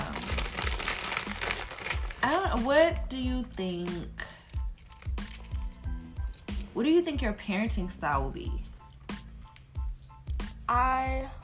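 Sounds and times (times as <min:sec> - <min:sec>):
potato chip bag crinkling and rustling: 0:00.0 - 0:03.1, 0:04.3 - 0:06.4
speech: 0:02.2 - 0:04.2, 0:06.8 - 0:08.7, 0:10.7 - 0:11.4.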